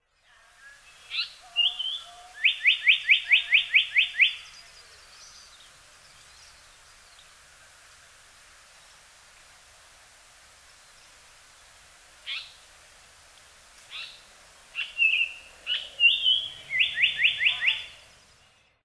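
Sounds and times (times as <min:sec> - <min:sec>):
Japanese Paradise Flycatcher calling in Hyogo: 0:00.2 - 0:07.4, 0:10.8 - 0:12.7, 0:13.8 - 0:18.8.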